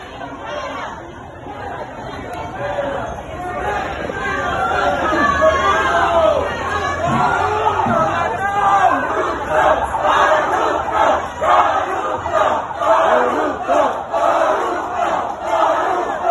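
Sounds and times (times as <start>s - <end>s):
overlapping jeering voices: 0.0s - 16.2s
crowd of patients and people booing at a hospital: 2.6s - 16.2s.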